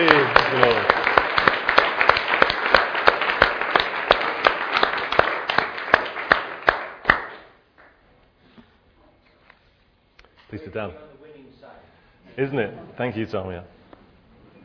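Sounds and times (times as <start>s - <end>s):
audience clapping: 0.0s - 8.0s
speech: 10.7s - 11.1s, 12.4s - 13.8s.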